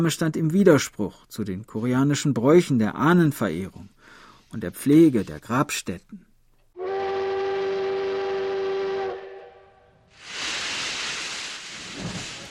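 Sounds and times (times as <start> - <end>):
speech: 0.0 - 6.3
train whistle: 6.8 - 10.1.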